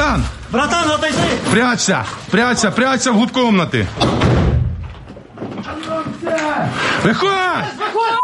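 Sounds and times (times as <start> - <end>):
speech: 0.2 - 4.6, 6.5 - 8.2
door being knocked down during an assault on a hiding place: 4.0 - 5.2
laughter: 7.0 - 8.2.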